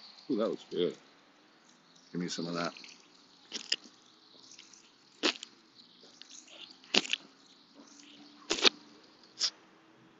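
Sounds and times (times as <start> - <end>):
speech: 0.3 - 1.1, 2.1 - 2.9
water dripping from a faucet: 1.6 - 8.4.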